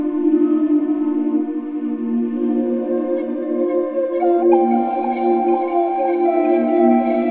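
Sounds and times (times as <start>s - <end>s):
spirit flute playing: 0.2s - 7.2s.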